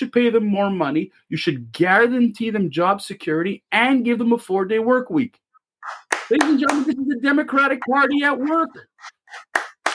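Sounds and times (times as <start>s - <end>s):
speech: 0.0s - 9.6s
slow separate hand claps: 5.9s - 7.0s, 9.3s - 9.9s.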